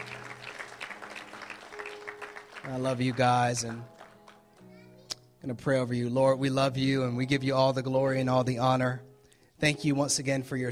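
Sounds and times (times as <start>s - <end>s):
church audience applauding: 0.0s - 4.7s
speech: 2.7s - 4.0s, 5.4s - 10.7s.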